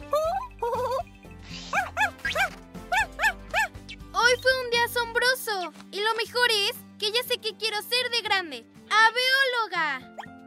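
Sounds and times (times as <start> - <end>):
light music: 0.0 - 10.4
bird giving sharp dog-like barks: 1.7 - 3.8.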